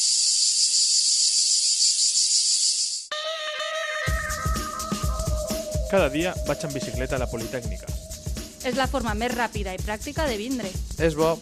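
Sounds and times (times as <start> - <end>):
cicada drone: 0.0 - 10.8
bright music with a strong beat: 4.1 - 11.4
speech: 5.9 - 8.0, 8.6 - 11.4.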